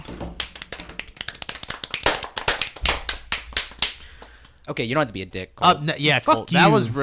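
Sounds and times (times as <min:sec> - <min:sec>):
people clapping hands: 0:00.0 - 0:04.6
speech: 0:04.7 - 0:07.0.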